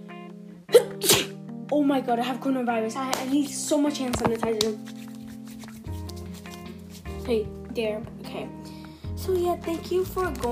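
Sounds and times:
person sneezing: 0.7s - 1.4s
speech: 1.0s - 5.0s, 7.3s - 8.7s, 9.3s - 10.5s.

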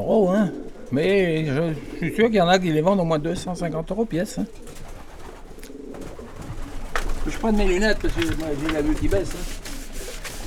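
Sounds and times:
speech: 0.0s - 4.9s, 7.3s - 9.6s
pigeons cooing: 0.0s - 10.4s
light rustling: 6.6s - 10.4s.

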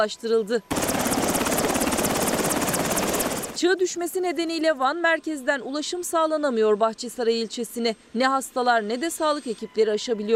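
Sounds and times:
speech: 0.0s - 1.3s, 3.6s - 10.3s
military helicopter flying with chopping rotor blades and engine drone: 0.7s - 4.7s.

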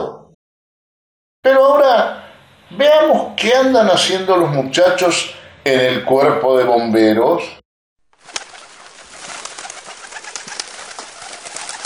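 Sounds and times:
speech: 1.4s - 7.6s
chorus of pigeons nesting in a shed cooing: 8.2s - 11.8s
pigeon wing flutters: 8.2s - 11.8s.

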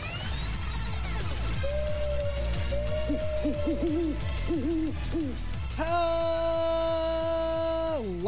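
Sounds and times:
rhythmic musical backing: 0.0s - 8.2s
owl hooting: 1.5s - 5.4s
speech: 3.1s - 7.0s.

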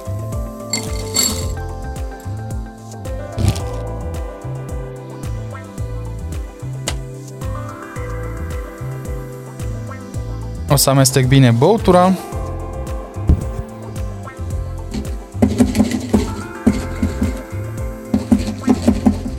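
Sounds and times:
steady rhythmic music: 0.0s - 19.3s
nugget ice clinking into a glass: 0.7s - 1.6s
speech: 10.8s - 12.3s.

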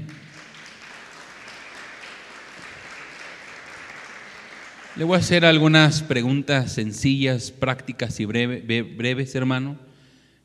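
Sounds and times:
church audience clapping hands in praise: 0.0s - 6.1s
speech: 5.0s - 9.9s.

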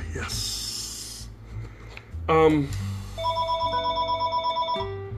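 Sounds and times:
speech: 0.2s - 0.6s, 2.3s - 2.9s
telephone ringing with electronic pulsing warble: 3.2s - 5.0s.

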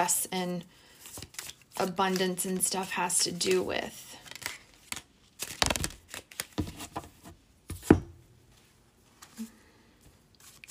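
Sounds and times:
speech: 0.0s - 0.8s, 1.8s - 4.2s
deck of tarot cards being shuffled: 1.0s - 3.6s, 4.2s - 7.1s, 10.4s - 10.6s.

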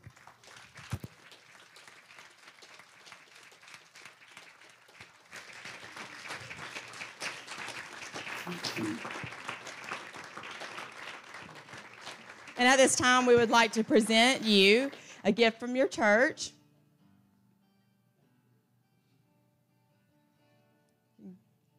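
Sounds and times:
standing church audience applauding: 0.0s - 15.6s
speech: 8.5s - 9.3s, 12.6s - 16.6s.

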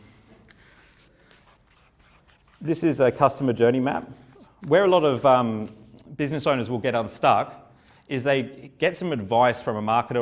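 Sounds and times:
marker or chalk writing neatly on a board: 0.8s - 5.3s
speech: 2.6s - 10.2s.

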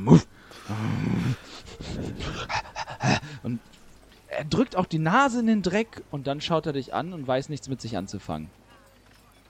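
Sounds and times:
speech: 0.0s - 0.9s, 4.4s - 8.6s
dog growling: 0.0s - 3.3s
dog panting: 1.5s - 3.4s.

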